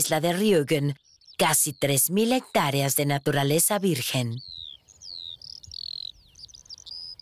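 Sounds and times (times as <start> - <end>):
speech: 0.0 - 4.5
chorus of larks singing: 0.0 - 7.2.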